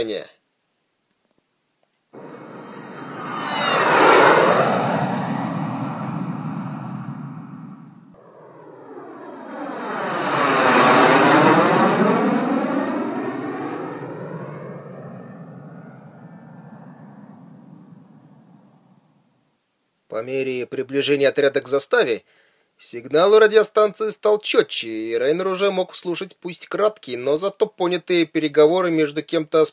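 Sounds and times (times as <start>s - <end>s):
speech: 0.0s - 0.4s, 20.2s - 29.7s
aircraft engine roars sweeping past overhead: 2.2s - 19.0s.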